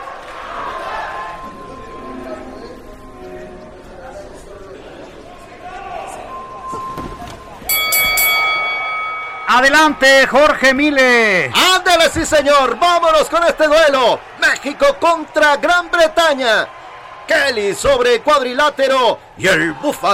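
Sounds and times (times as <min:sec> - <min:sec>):
arena crowd murmur: 0:00.0 - 0:07.7
boxing bell ringing to start round: 0:01.1 - 0:03.5, 0:06.2 - 0:11.4
speech: 0:09.5 - 0:20.1.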